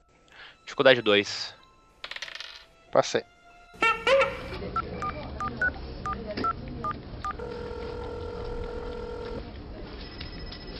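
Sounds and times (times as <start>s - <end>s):
speech: 0.8s - 1.6s, 2.9s - 3.3s
telephone keypad dialing tones: 4.8s - 9.5s
steady sustained telephone line tone: 7.3s - 9.5s.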